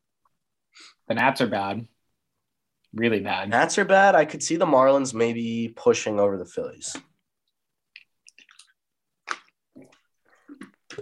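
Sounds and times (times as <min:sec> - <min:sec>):
speech: 0:01.1 - 0:01.9, 0:02.9 - 0:07.1
several people gulping and slurping water: 0:07.9 - 0:11.0.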